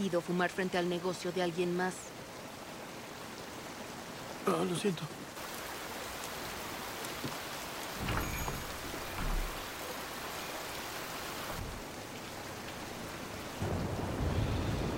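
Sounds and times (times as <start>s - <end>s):
speech: 0.0s - 2.3s, 4.4s - 5.2s
heavy rain on hard surfaces in an alley in front of a shop: 0.0s - 14.9s.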